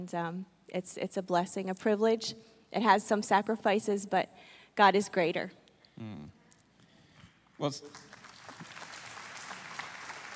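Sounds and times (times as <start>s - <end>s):
speech: 0.0s - 6.4s, 7.6s - 8.1s
audience clapping: 7.6s - 10.3s.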